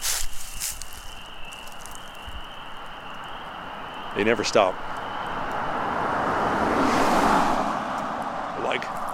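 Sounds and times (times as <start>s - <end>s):
car driving past on road: 3.3s - 9.1s
speech: 4.2s - 5.0s.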